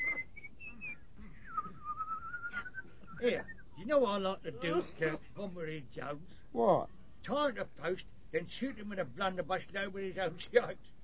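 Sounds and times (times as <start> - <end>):
soldier whistling a slow concerto melody: 0.0 - 3.7
speech: 3.2 - 11.0.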